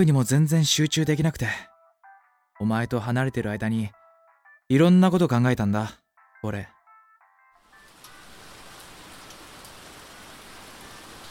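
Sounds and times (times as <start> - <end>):
speech: 0.0 - 1.7, 2.6 - 4.0, 4.7 - 6.8
rain falling: 7.6 - 11.2.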